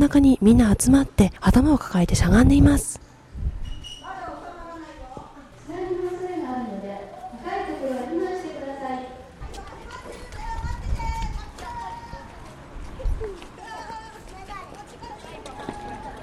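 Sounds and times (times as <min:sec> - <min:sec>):
speech: 0:00.0 - 0:03.0
crowd of children calling out and chattering outdoors during evacuation drill: 0:02.5 - 0:16.2
quick thudding footsteps of children running: 0:09.4 - 0:16.2.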